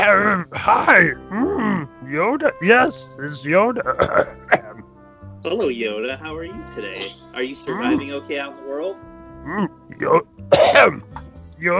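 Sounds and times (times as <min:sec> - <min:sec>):
speech: 0:00.0 - 0:01.5, 0:02.1 - 0:04.6, 0:05.4 - 0:11.7
raspy throaty coughs: 0:03.8 - 0:04.8, 0:10.5 - 0:11.0.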